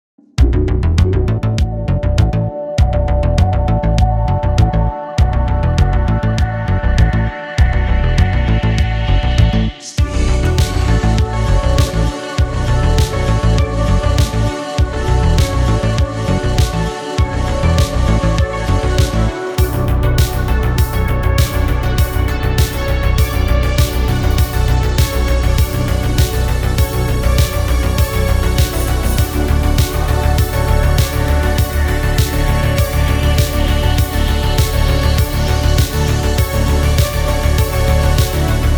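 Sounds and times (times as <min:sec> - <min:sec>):
synthwave remix: 0:00.8 - 0:38.7.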